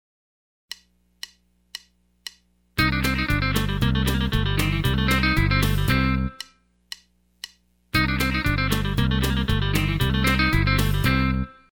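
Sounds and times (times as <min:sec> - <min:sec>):
country rock music: 0:02.8 - 0:06.4, 0:07.9 - 0:11.6.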